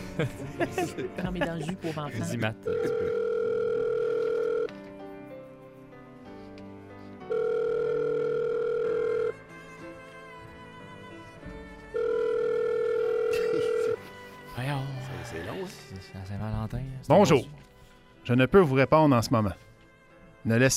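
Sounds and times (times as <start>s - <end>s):
laughter: 0.0s - 3.3s, 13.3s - 15.5s
quieter musical sounds: 0.0s - 20.7s
speech: 0.2s - 3.3s, 16.3s - 17.6s, 18.3s - 19.6s, 20.4s - 20.7s
long steady electronic telephone ringback tones during a call: 2.7s - 4.7s, 7.3s - 9.4s, 12.0s - 14.0s.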